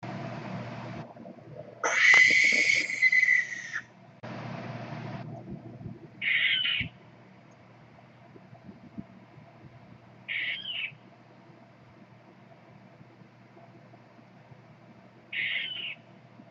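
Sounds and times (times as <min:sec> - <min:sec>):
barn owl calling: 0:01.8 - 0:03.9, 0:06.2 - 0:07.0, 0:10.3 - 0:11.1, 0:15.3 - 0:16.1.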